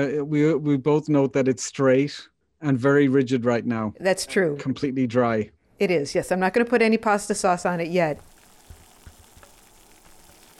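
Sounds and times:
speech: 0:00.0 - 0:08.3
faint bubbling of water: 0:06.6 - 0:10.5
pot of water starting to boil: 0:06.6 - 0:10.5.

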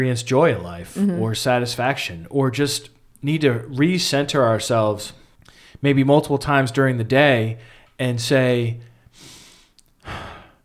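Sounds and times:
speech: 0:00.0 - 0:05.2, 0:05.8 - 0:09.3
slow deliberate deep breath: 0:05.2 - 0:05.8, 0:07.6 - 0:08.0, 0:08.9 - 0:10.6.

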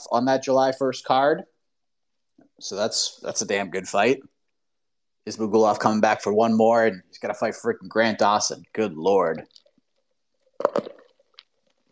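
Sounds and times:
speech: 0:00.0 - 0:01.5, 0:02.6 - 0:04.3, 0:05.2 - 0:09.6, 0:10.7 - 0:10.9
sipping iced coffee through a straw: 0:10.4 - 0:11.9.

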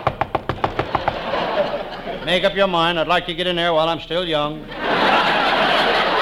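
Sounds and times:
sharp knocks on the wooden door of a hideout: 0:00.0 - 0:01.2
laughter: 0:00.8 - 0:03.3, 0:04.6 - 0:06.2
speech: 0:02.3 - 0:05.8.

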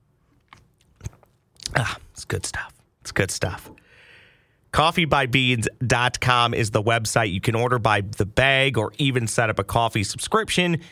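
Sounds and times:
person sipping coffee: 0:00.3 - 0:02.1
gulp of coffee: 0:01.0 - 0:02.2
speech: 0:01.8 - 0:03.8, 0:04.7 - 0:10.8.

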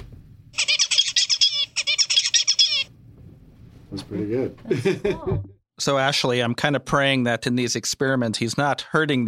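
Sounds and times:
young small bird singing imitated song: 0:00.6 - 0:02.9
speech: 0:03.9 - 0:09.2
laughter: 0:04.7 - 0:05.5.

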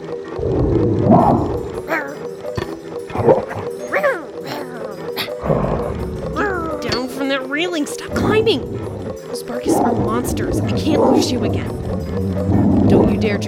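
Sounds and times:
low rumbling background: 0:00.3 - 0:01.9, 0:05.4 - 0:07.2, 0:07.9 - 0:13.4
large dogs barking and baying: 0:03.0 - 0:06.8, 0:08.3 - 0:13.4.

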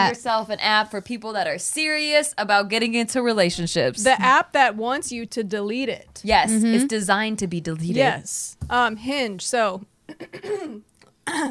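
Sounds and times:
speech: 0:00.0 - 0:11.4
person clearing throat in rough gravelly bursts: 0:10.1 - 0:11.4.

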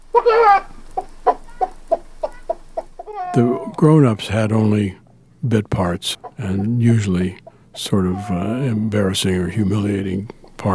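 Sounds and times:
person imitating a chicken squawking and clucking: 0:00.1 - 0:00.7, 0:01.4 - 0:03.8, 0:06.2 - 0:07.0, 0:07.8 - 0:08.9
speech: 0:00.2 - 0:00.7, 0:03.4 - 0:10.7.

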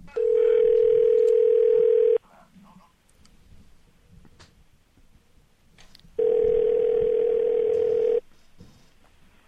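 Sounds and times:
faint noise: 0:00.0 - 0:09.4
phone ringback tone on an outgoing call: 0:00.1 - 0:02.2, 0:06.2 - 0:08.2.

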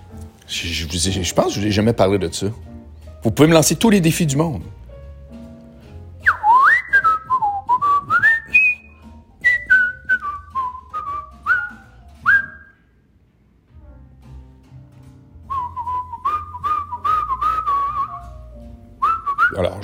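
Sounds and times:
speech: 0:00.5 - 0:04.8
person whistling a lively melody: 0:06.2 - 0:12.9, 0:15.5 - 0:18.4, 0:19.0 - 0:19.8.

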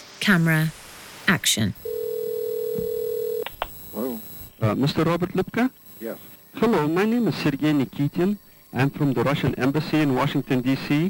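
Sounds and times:
speech: 0:00.2 - 0:01.9, 0:04.0 - 0:11.0
telephone dial tone: 0:01.8 - 0:03.9.

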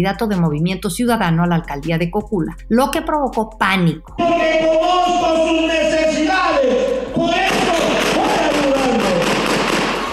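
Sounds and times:
speech: 0:00.0 - 0:07.7
noisy crowded background at a campaign rally: 0:04.2 - 0:10.1
rapid burst of gunshots at a mayoral campaign rally: 0:09.0 - 0:10.1.

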